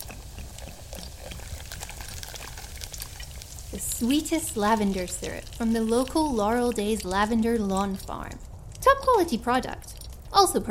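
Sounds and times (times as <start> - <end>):
fizzy crackle of bursting bubbles: 0.0 - 8.4
sparkling mineral water from a mountain spring pouring into a glass: 0.0 - 8.4
speech: 3.8 - 10.6.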